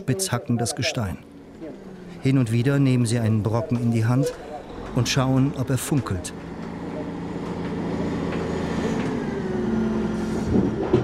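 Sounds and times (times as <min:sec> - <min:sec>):
speech: 0:00.0 - 0:01.3, 0:02.2 - 0:06.5
small mining truck hauling rock driving up inside a mine: 0:00.0 - 0:11.0.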